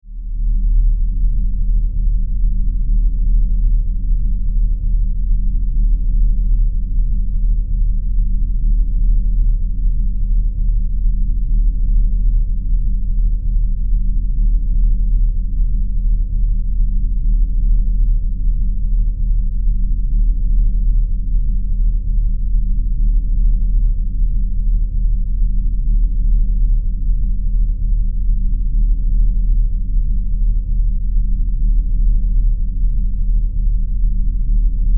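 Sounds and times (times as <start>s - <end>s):
deep throbbing bass drone inside a spaceship: 0.0s - 34.9s
low rumble inside a spaceship: 0.0s - 34.9s.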